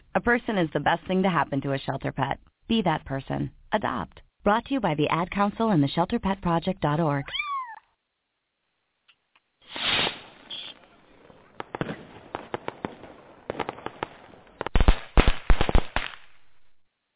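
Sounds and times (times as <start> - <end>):
speech: 0.2 - 7.4
hissing burst of firecrackers: 9.6 - 10.9
firecrackers popping: 9.6 - 16.6.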